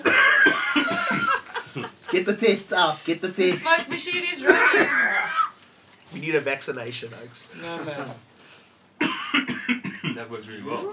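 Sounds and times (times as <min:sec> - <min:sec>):
person coughing in rough hacking bursts: 0:00.0 - 0:01.4, 0:04.4 - 0:05.5, 0:09.0 - 0:10.2
laughter: 0:00.0 - 0:02.4
speech: 0:02.3 - 0:05.4, 0:06.1 - 0:08.3, 0:10.2 - 0:10.9.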